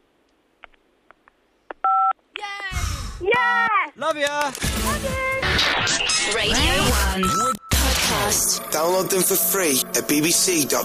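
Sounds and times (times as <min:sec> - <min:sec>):
touch phone keypad DTMF tone for 5: 0:01.8 - 0:02.1
speech: 0:03.4 - 0:10.8.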